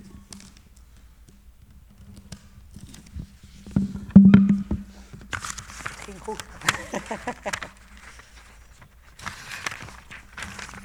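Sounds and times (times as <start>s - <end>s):
sheet of paper being turned over: 0.2s - 10.8s
low steady hum: 4.0s - 5.1s
laughter: 6.0s - 8.2s
speech: 6.3s - 7.8s.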